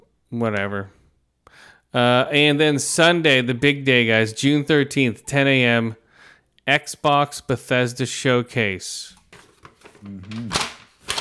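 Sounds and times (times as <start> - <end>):
speech: 0.3 - 1.0, 1.6 - 6.0, 6.7 - 9.2, 10.0 - 10.6
printed sheet of paper rustling while handled: 9.2 - 11.2
short hummed vocal sound: 10.0 - 10.6.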